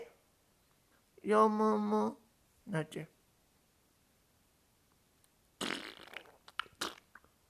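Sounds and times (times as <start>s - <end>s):
speech: 1.3s - 3.2s
fart: 5.6s - 7.3s.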